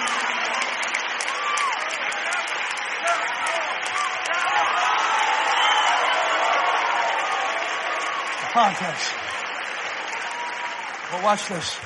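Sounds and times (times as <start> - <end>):
church audience cheers and shouts: 0.0 - 11.8
large church audience clapping: 0.0 - 11.8
speech: 8.6 - 9.3, 11.1 - 11.8.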